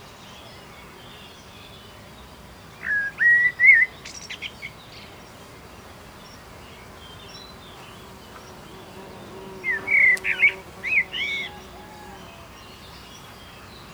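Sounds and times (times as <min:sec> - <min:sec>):
faint steady background noise: 0:00.0 - 0:13.9
Common blackbird Turdus merula song: 0:00.2 - 0:13.9.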